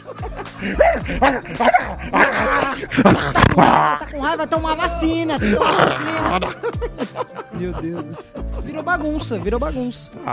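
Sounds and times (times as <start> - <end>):
laughter: 0.0 - 10.0
speech: 0.1 - 10.3
person imitating a dog barking with loud rough woofs: 0.7 - 4.1, 5.4 - 6.5.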